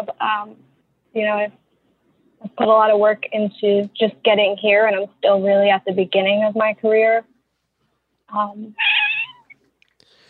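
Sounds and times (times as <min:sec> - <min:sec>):
speech: 0:00.0 - 0:01.6, 0:02.5 - 0:07.3, 0:08.3 - 0:08.8
cat meowing loudly: 0:08.8 - 0:09.6.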